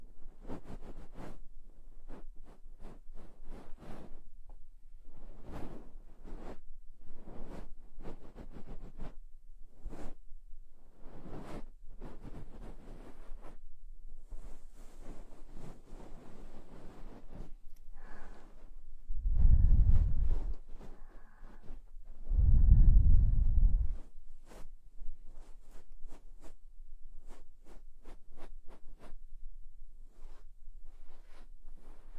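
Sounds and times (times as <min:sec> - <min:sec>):
binaural cleaning brushing and scraping strokes: 0:00.3 - 0:04.3, 0:05.1 - 0:10.2, 0:10.9 - 0:29.2, 0:30.0 - 0:32.1
deep rubbing: 0:14.4 - 0:24.6.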